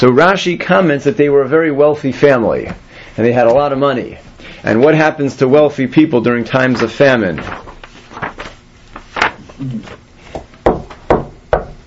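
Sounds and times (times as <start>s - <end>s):
speech: 0.0s - 7.8s, 9.6s - 10.0s
sharp knocks on a door: 10.6s - 11.8s.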